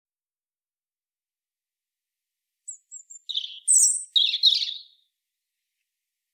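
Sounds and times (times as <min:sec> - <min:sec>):
European robin Erithacus rubecula singing: 0:02.7 - 0:05.1.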